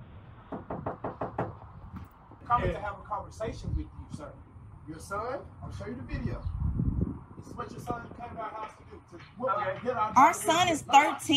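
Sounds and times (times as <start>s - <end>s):
heavy knocks on a house door: 0.5s - 2.1s
speech: 2.5s - 6.6s, 7.4s - 11.3s.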